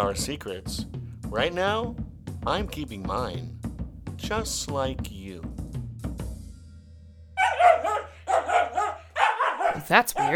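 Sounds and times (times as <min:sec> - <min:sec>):
speech: 0:00.0 - 0:03.6, 0:04.2 - 0:05.6, 0:09.9 - 0:10.3
dog barking: 0:07.4 - 0:10.3.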